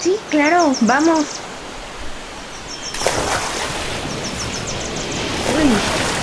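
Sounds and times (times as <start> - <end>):
speech: 0.0 - 1.4
ocean surf: 1.4 - 6.2
water splashing: 1.8 - 6.2.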